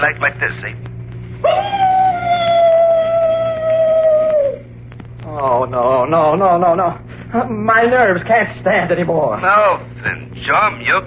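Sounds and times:
speech: 0:00.0 - 0:01.8, 0:05.4 - 0:11.0
faint low hum: 0:00.0 - 0:11.0
person imitating a mournful dog howl as a ghost-story sound effect: 0:01.4 - 0:04.7.

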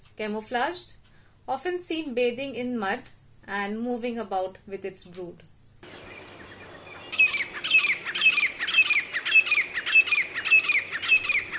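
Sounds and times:
speech: 0:00.2 - 0:05.5
grey francolin calling: 0:05.8 - 0:11.5.

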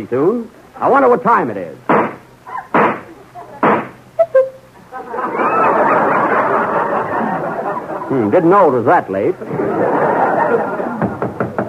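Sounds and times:
speech: 0:00.0 - 0:01.9, 0:08.1 - 0:10.8
noise: 0:00.0 - 0:11.6
laughter: 0:04.8 - 0:11.6
knocking on a door: 0:11.0 - 0:11.6.

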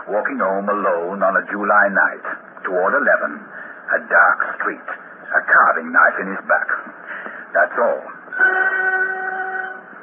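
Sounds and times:
speech: 0:00.1 - 0:06.9, 0:07.6 - 0:08.7
whistle of a night train to Norwich: 0:08.3 - 0:09.9.

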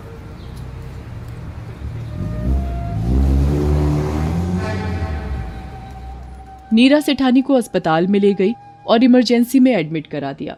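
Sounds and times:
car engine revving as the car pulls away: 0:01.6 - 0:06.7
speech: 0:06.8 - 0:10.5.

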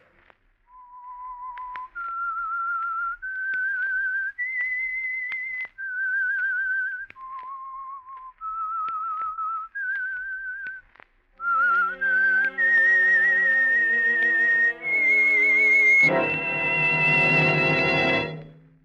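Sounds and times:
solo whistled melody: 0:00.7 - 0:18.6
orchestral chord passage: 0:11.5 - 0:18.8.

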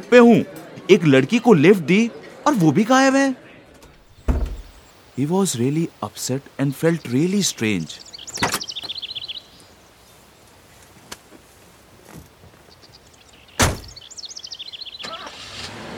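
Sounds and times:
speech: 0:00.0 - 0:03.4, 0:05.2 - 0:08.5
car door thunks: 0:03.8 - 0:04.8, 0:13.6 - 0:14.0
high chirping: 0:04.0 - 0:10.4, 0:12.6 - 0:15.2
car engine starting: 0:15.0 - 0:15.9.

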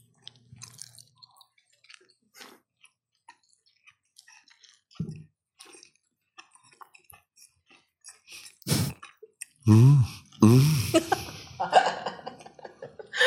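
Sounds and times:
chewing marinated galbi ribs with french fries: 0:00.0 - 0:10.4
laughter: 0:10.6 - 0:13.2.

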